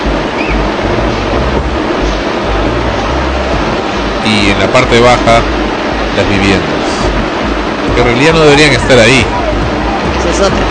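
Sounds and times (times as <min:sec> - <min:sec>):
muddy floodwater rushing downhill: 0:00.0 - 0:10.7
speech: 0:04.3 - 0:05.6, 0:06.2 - 0:06.9, 0:08.0 - 0:09.4, 0:10.2 - 0:10.7.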